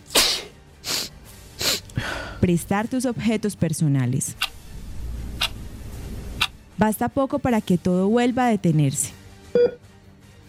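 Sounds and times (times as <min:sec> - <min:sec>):
person sneezing: 0:00.0 - 0:02.2
person sniffing: 0:00.0 - 0:02.3
speech: 0:02.4 - 0:04.5, 0:06.8 - 0:09.2.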